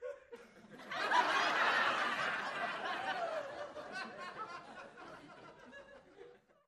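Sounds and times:
laughter: 0.0 - 6.6
crowd of 50 cheering heartily in small interior: 0.8 - 5.9.

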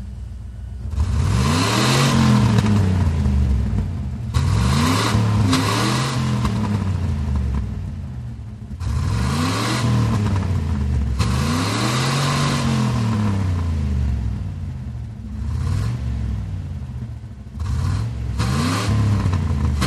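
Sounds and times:
1990 Chevy Camaro engine on hard revs, exterior: 0.9 - 7.6, 8.8 - 14.4, 15.3 - 16.5, 17.5 - 19.8.

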